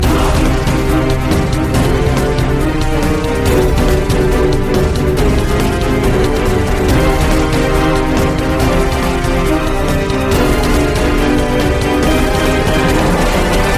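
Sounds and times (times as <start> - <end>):
bomb ten-second countdown music: 0.0 - 13.7.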